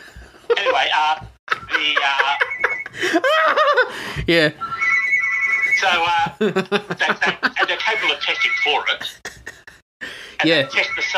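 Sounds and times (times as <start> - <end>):
people laughing and chuckling: 0.5 - 3.9, 5.8 - 9.8
speech: 0.8 - 4.7, 5.8 - 9.3, 10.4 - 11.1
landline telephone ringing with an electronic warble: 1.6 - 3.0, 4.6 - 6.2, 7.5 - 9.0, 10.4 - 11.1.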